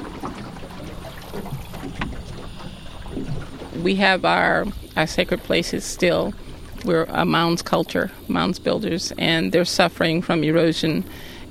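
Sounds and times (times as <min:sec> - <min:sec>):
small water splashes: 0:00.0 - 0:08.4
faint water lapping against a drifting boat: 0:00.0 - 0:11.4
soft wind in a marsh: 0:00.0 - 0:11.4
speech: 0:03.8 - 0:11.3.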